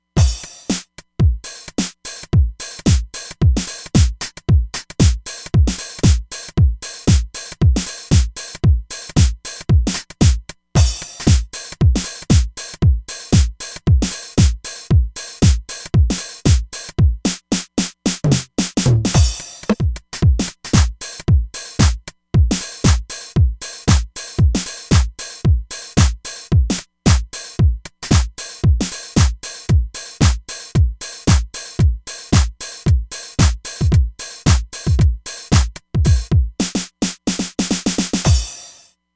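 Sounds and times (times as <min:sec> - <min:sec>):
house drum kit on a synthesizer: 0:00.0 - 0:38.8.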